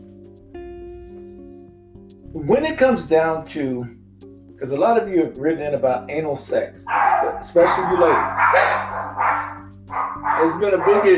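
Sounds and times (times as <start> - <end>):
speech: 2.3 - 4.0, 4.6 - 8.9, 10.4 - 11.1
dog barking: 6.9 - 11.1.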